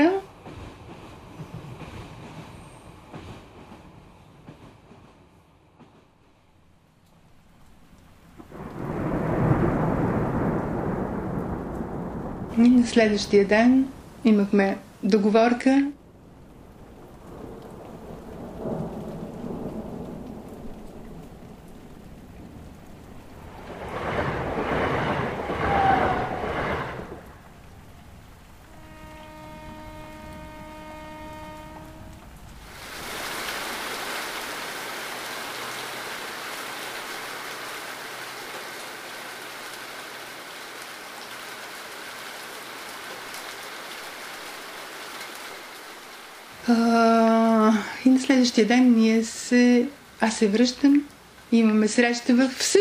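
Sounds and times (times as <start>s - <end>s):
pouring rain: 0.0s - 3.1s, 6.1s - 52.7s
rumble of thunder: 8.4s - 14.3s, 16.0s - 34.6s
speech: 12.8s - 16.0s, 48.4s - 52.7s.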